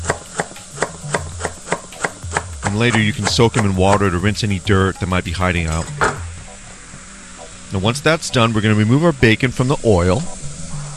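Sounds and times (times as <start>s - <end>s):
knife chopping leeks into half-inch strips: 0.0s - 4.1s
speech: 2.7s - 6.2s, 7.7s - 10.4s.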